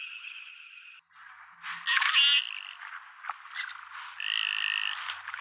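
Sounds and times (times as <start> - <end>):
common goldeneye calling: 1.8 - 2.9, 3.5 - 5.3.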